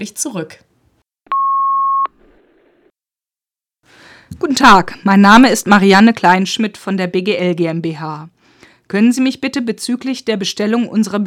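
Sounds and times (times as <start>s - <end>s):
speech: 0.0s - 0.7s, 3.9s - 11.2s
electronic answering machine beep: 1.3s - 2.1s.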